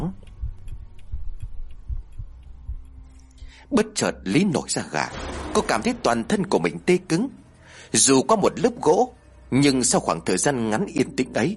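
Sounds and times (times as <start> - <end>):
heartbeat thumping in deep low double beats: 0.0 - 3.2
faint light clock ticks: 0.0 - 4.0
speech: 3.6 - 11.5.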